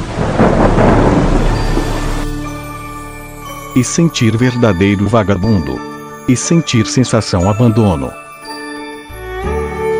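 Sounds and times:
deep thunder rolls: 0.0 - 3.7
steady heavy rain hissing: 0.0 - 4.2
speech: 3.8 - 8.2.

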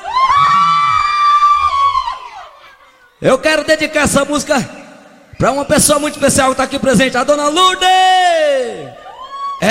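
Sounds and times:
live audience of women screaming and cheering: 0.0 - 3.2, 8.6 - 9.6
speech: 3.2 - 4.8, 5.4 - 8.8.

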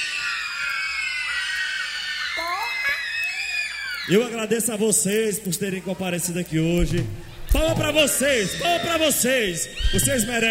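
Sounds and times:
large concert crowd screaming and shrieking: 0.0 - 4.5, 7.2 - 10.5
speech: 4.1 - 10.5.

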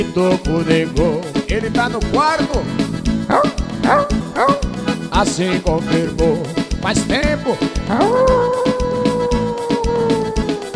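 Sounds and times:
speech: 0.0 - 4.6, 5.2 - 8.6
rhythmic thumping beat: 0.6 - 8.8
dog howling: 3.3 - 4.7, 7.9 - 10.7.

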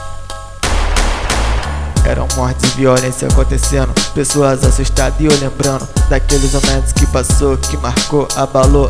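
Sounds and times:
volley of sharp gunshots: 0.6 - 3.4
low rumbling background: 0.6 - 3.9
speech: 2.1 - 8.8.

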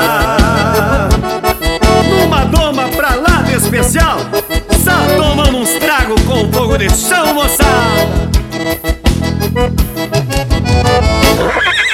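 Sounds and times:
rhythmic music with percussive hits: 0.0 - 11.9
speech: 5.4 - 8.5
horse whinnying: 11.2 - 11.9.

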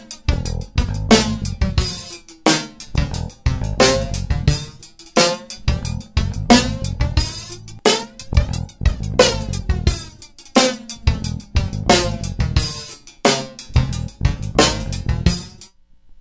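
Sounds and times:
drum and bass with flanger effect: 0.3 - 2.0, 2.9 - 4.8, 5.5 - 10.2, 10.9 - 12.7, 13.7 - 15.5.

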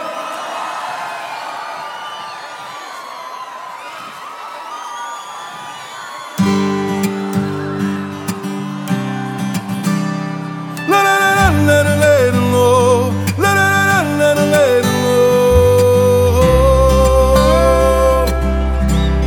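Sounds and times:
large crowd shouting and cheering: 0.0 - 19.2
live music: 6.5 - 11.8, 17.4 - 19.2.

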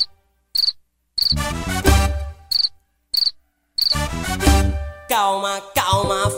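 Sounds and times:
cricket chirping in short buzzy pulsed bursts: 0.0 - 1.4, 2.5 - 4.0
speech: 1.3 - 2.0, 5.2 - 6.3.

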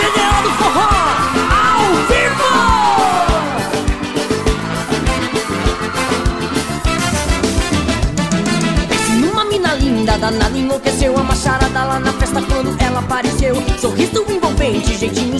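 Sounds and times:
crowd yelling and whooping at live forró show: 0.0 - 9.2
live band playing driving music with a strong beat: 0.0 - 15.3.

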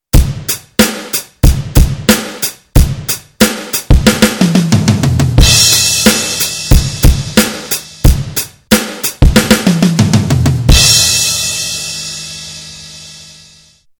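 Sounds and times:
digital drums beginner fill: 0.2 - 11.8.

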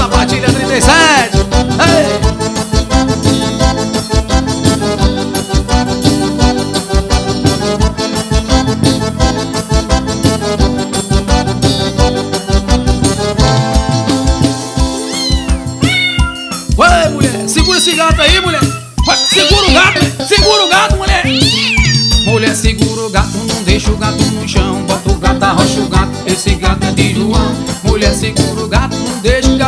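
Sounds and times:
loud busy band music with steady rhythm: 0.0 - 29.6
cat meowing: 15.0 - 16.8, 17.4 - 22.5.

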